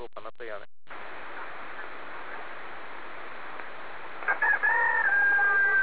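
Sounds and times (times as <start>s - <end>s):
rooster crowing heard over a radio link: 4.2s - 5.8s.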